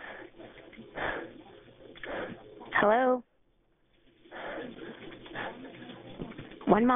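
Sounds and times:
heavy breathing over a phone line: 0:00.0 - 0:02.6, 0:04.2 - 0:06.0
speech: 0:02.8 - 0:03.3, 0:06.8 - 0:06.9.

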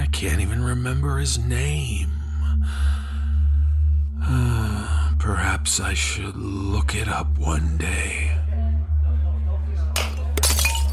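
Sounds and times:
steady low hum: 0:00.0 - 0:10.9
speech: 0:00.2 - 0:03.0, 0:05.2 - 0:08.4
glass dropped and shattering: 0:10.0 - 0:10.9.

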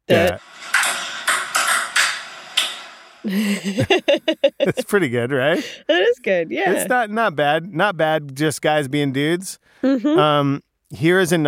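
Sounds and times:
laughter: 0:00.1 - 0:00.4, 0:03.3 - 0:05.9, 0:06.6 - 0:07.5
speech: 0:00.1 - 0:00.5, 0:03.2 - 0:11.4
ping pong balls bouncing on a table during casual play: 0:00.2 - 0:02.8.

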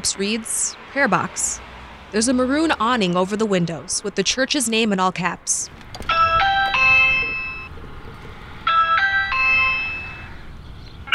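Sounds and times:
speech: 0:00.0 - 0:06.1
electronic doorbell chime at a church door: 0:06.1 - 0:07.7, 0:08.7 - 0:10.4.

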